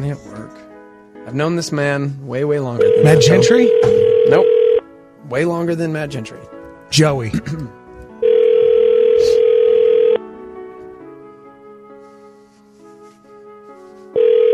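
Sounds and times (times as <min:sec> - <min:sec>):
speech: 0:00.0 - 0:04.5, 0:05.3 - 0:07.8
outgoing phone call ringback tone: 0:02.8 - 0:04.8, 0:08.2 - 0:10.2, 0:14.2 - 0:14.5
quiet phone line hiss: 0:02.8 - 0:04.8.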